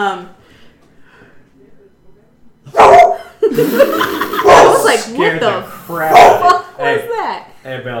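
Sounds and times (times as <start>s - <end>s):
speech: 0.0s - 0.4s, 3.6s - 4.2s, 4.8s - 7.9s
dog barking at someone outside: 2.7s - 3.3s, 4.4s - 5.0s, 6.1s - 6.6s
laughter: 3.2s - 5.0s.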